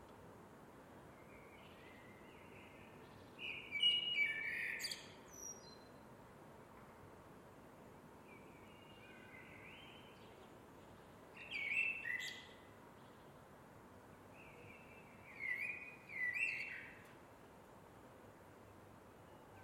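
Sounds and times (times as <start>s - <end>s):
Eurasian blackbird song: 1.1s - 6.0s, 8.2s - 13.4s, 14.3s - 17.1s, 19.2s - 19.6s.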